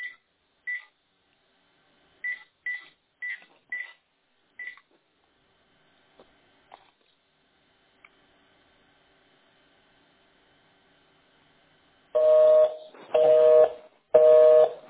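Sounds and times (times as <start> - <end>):
long telephone line tones signalling call not connecting: 12.2 - 14.8.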